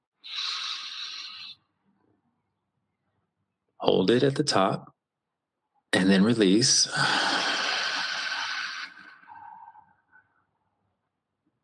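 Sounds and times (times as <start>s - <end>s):
deep breath in during a guided breathing exercise: 0.3s - 1.6s, 6.9s - 9.8s
speech: 3.8s - 4.9s, 5.9s - 7.4s.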